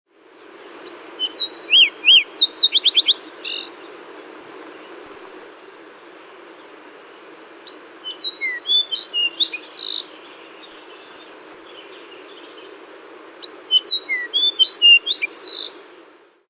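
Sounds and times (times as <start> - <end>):
Lincoln's sparrow calling: 0.8 - 3.8, 7.6 - 11.2, 13.4 - 15.7.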